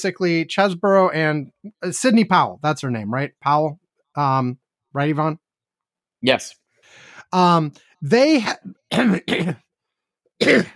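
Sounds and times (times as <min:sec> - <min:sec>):
speech: 0:00.0 - 0:05.4, 0:06.2 - 0:09.6, 0:10.4 - 0:10.7
person coughing throatily: 0:08.9 - 0:09.7, 0:10.4 - 0:10.7
throat clearing: 0:08.9 - 0:09.7, 0:10.4 - 0:10.7.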